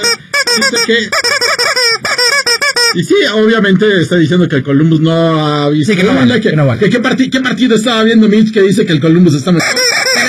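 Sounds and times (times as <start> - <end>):
chicken squawking: 0.0 - 3.0, 9.6 - 10.2
speech: 0.6 - 1.3, 2.9 - 9.8.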